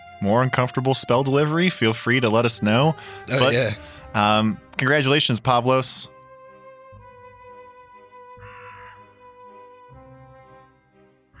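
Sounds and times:
speech: 0:00.2 - 0:06.2
crow cawing: 0:08.4 - 0:09.2.

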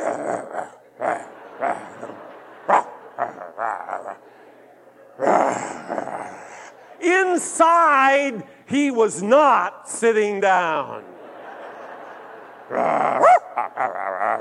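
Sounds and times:
person imitating an agitated dog with growls and snarling barks: 0:00.0 - 0:02.2, 0:03.2 - 0:04.2, 0:05.2 - 0:06.7, 0:12.7 - 0:14.3
laughter: 0:00.0 - 0:08.3, 0:10.9 - 0:14.3
speech: 0:07.4 - 0:11.1.

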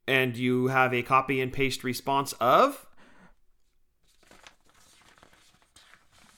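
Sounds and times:
speech: 0:00.1 - 0:02.9
paper rustling and crinkling: 0:03.6 - 0:06.3.

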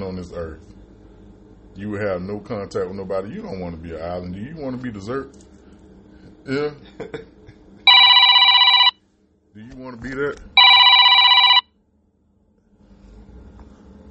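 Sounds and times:
speech: 0:00.0 - 0:00.9, 0:01.8 - 0:05.5, 0:06.4 - 0:07.4, 0:09.6 - 0:10.6
mobile phone ringing: 0:07.9 - 0:09.0, 0:10.6 - 0:11.7.

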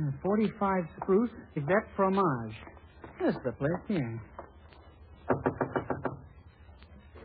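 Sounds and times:
speech: 0:00.2 - 0:04.3
knocking on a door: 0:05.3 - 0:06.2.

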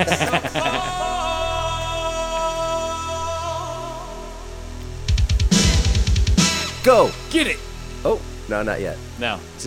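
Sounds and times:
laughter: 0:00.0 - 0:01.6
sustained synth chords: 0:00.0 - 0:09.6
Roland 909 drum machine beat: 0:05.1 - 0:06.8
speech: 0:06.9 - 0:09.6.

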